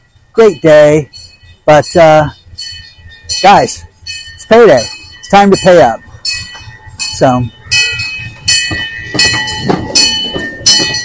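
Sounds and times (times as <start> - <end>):
train rumbling past in a park: 0.0 - 11.0
speech: 0.4 - 2.4, 3.3 - 3.9, 4.5 - 6.0, 7.2 - 7.6
regular bright ringing train bell: 0.4 - 11.0.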